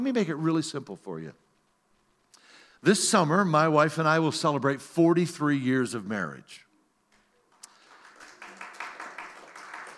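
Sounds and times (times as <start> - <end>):
speech: 0.0 - 1.4, 2.8 - 6.6
audience applause: 7.5 - 9.9.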